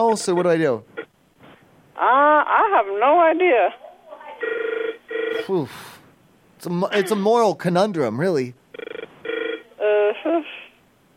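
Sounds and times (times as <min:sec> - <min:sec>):
speech: 0:00.0 - 0:00.9, 0:02.0 - 0:03.8, 0:05.3 - 0:06.0, 0:06.6 - 0:08.6
hotel telephone ringing with a short electronic melody: 0:04.4 - 0:05.4, 0:08.7 - 0:09.7.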